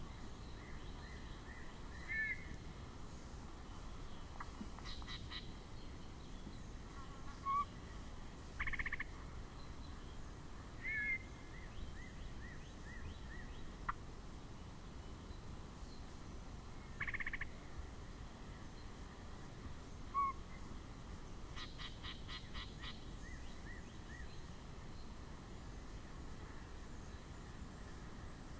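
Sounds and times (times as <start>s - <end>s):
low background noise: 0.0s - 28.5s
yellow-breasted chat giving varied calls: 0.6s - 2.6s, 4.2s - 6.6s, 7.3s - 7.8s, 8.6s - 9.9s, 10.8s - 14.0s, 16.8s - 17.6s, 20.1s - 20.6s, 21.6s - 24.4s.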